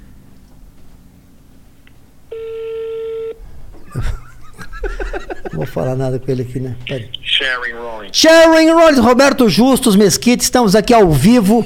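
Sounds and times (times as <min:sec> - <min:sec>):
phone ringback tone while waiting for a call to be answered: 0:02.3 - 0:03.4
laughter: 0:03.8 - 0:06.0
speech: 0:03.9 - 0:04.2, 0:05.6 - 0:11.6.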